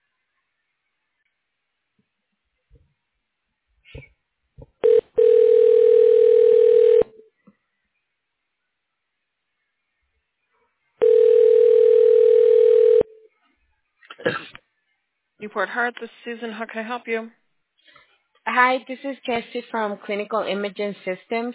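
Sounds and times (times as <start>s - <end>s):
long steady electronic tones on an automated phone menu: 4.8s - 7.2s, 11.0s - 13.2s
speech: 15.6s - 17.4s, 18.5s - 21.5s.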